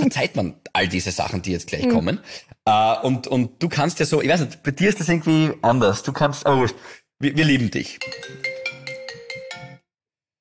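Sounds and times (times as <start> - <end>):
speech: 0.0 - 8.6
phone ringtone electronic melody for an incoming call: 8.0 - 9.9.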